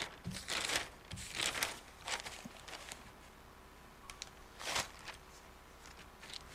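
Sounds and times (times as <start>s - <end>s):
newspaper pages being turned: 0.0s - 3.1s, 4.6s - 6.5s.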